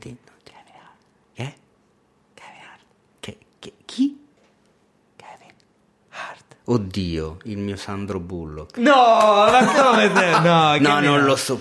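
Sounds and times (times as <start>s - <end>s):
speech: 0.0s - 0.3s, 1.4s - 1.6s, 6.7s - 11.5s
breathy whispering into someone's ear: 0.1s - 1.3s, 2.3s - 3.4s, 5.2s - 6.7s
laughter: 9.1s - 11.5s.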